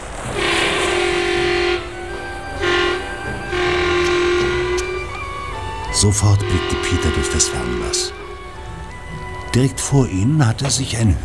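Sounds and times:
vehicle horn blasts: 0:00.4 - 0:08.8
speech: 0:06.0 - 0:08.2, 0:09.5 - 0:11.2.

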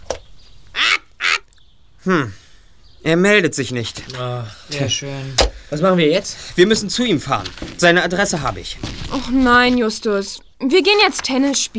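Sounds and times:
bird calling in harsh honking squawks: 0:00.4 - 0:01.8
speech: 0:02.0 - 0:02.4, 0:03.0 - 0:11.7.

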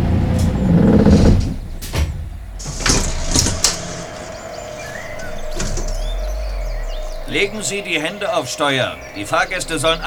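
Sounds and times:
bus engine rumbling and idling at a forest roadblock: 0:00.0 - 0:10.0
bus door mechanisms hissing: 0:00.5 - 0:10.0
bus air brakes hissing: 0:02.4 - 0:10.0
speech: 0:07.4 - 0:10.0.

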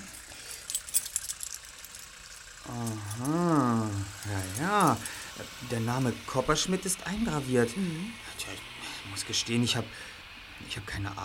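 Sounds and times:
keys jangling as a key is handed over: 0:00.0 - 0:05.3
speech: 0:02.7 - 0:03.5, 0:04.3 - 0:11.2.

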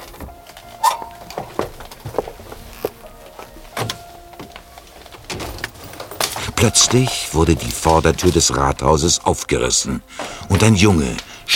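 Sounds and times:
car doors opening and thunking shut as people climb out: 0:00.0 - 0:07.0
soft rustling: 0:00.0 - 0:08.8
footsteps: 0:00.0 - 0:11.5
speech: 0:06.6 - 0:11.5.

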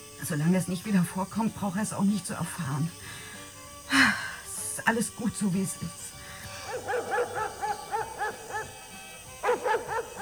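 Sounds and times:
speech: 0:00.2 - 0:03.2, 0:04.8 - 0:06.1
dog barking as it runs into a cornfield: 0:06.5 - 0:10.2.

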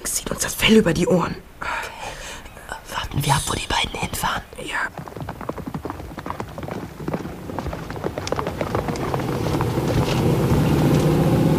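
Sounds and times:
steady rumbling noise: 0:00.0 - 0:11.5
speech: 0:00.4 - 0:01.6, 0:03.2 - 0:05.4
stallion galloping with hooves clattering: 0:03.5 - 0:11.5.

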